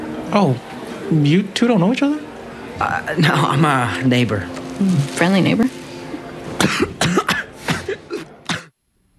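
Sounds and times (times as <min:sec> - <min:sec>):
speech: 0:00.3 - 0:05.7
person coughing harshly in a film scene: 0:06.6 - 0:08.7.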